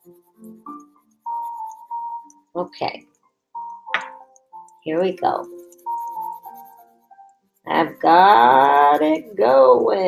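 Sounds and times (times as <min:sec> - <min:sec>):
pencil coloring on paper: 0:00.0 - 0:02.5, 0:04.6 - 0:10.0
speech: 0:02.6 - 0:03.1, 0:04.8 - 0:05.6, 0:07.8 - 0:10.0.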